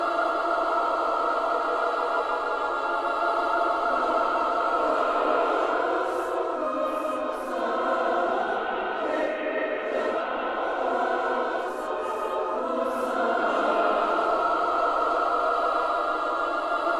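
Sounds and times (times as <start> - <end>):
choir cluster loop: 0.0 - 16.9.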